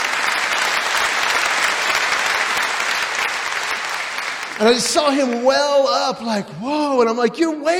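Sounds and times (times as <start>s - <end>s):
audience applause: 0.0s - 6.2s
speech: 4.6s - 7.7s.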